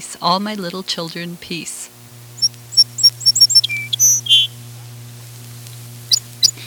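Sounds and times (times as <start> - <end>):
speech: 0.0 - 1.8
steady low hum: 0.0 - 6.6
song sparrow singing: 2.4 - 4.6, 6.1 - 6.6.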